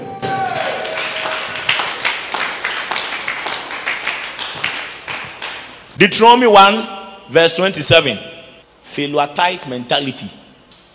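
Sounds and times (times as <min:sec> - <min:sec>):
audience clapping: 0:00.4 - 0:06.0
speech: 0:06.0 - 0:08.3, 0:08.9 - 0:10.4.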